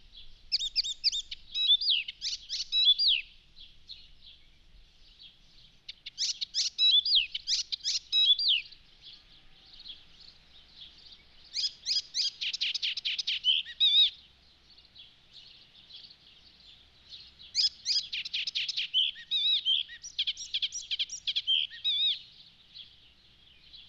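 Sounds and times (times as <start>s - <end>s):
Icterine warbler song: 0.0s - 23.8s.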